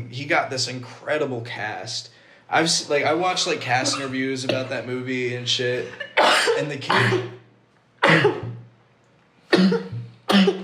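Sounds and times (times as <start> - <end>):
speech: 0.1 - 7.4, 8.1 - 8.4
harsh explosive coughs: 3.8 - 4.8, 6.0 - 7.4, 8.0 - 8.6, 9.5 - 10.6.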